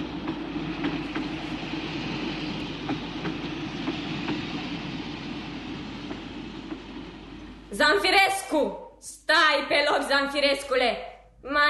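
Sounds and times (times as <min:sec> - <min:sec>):
clickety-clack of wheels over track joints: 0:00.0 - 0:07.2
train rumbling along the rails: 0:00.0 - 0:08.7
speech: 0:07.8 - 0:11.6.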